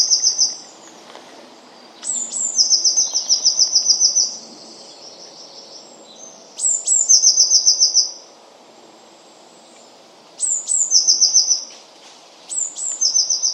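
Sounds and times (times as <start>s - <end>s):
faint hiss: 0.0s - 13.5s
Eurasian blue tit calls with high notes and trill of ticks: 2.0s - 8.2s, 10.4s - 11.7s, 12.5s - 13.5s.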